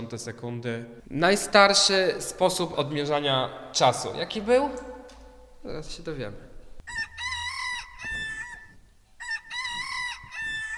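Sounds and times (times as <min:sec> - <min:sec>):
speech: 0:00.0 - 0:04.9, 0:05.6 - 0:07.0
rooster crowing at dawn: 0:06.9 - 0:10.7.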